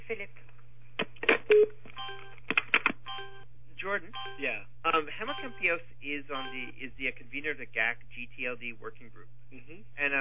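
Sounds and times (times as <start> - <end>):
steady low hum: 0.0 - 10.1
speech: 0.1 - 0.6, 3.9 - 10.1
faint keypad-like telephone line beeps as a phone is hung up: 1.5 - 2.4, 4.1 - 4.6, 5.3 - 5.7, 6.3 - 6.8.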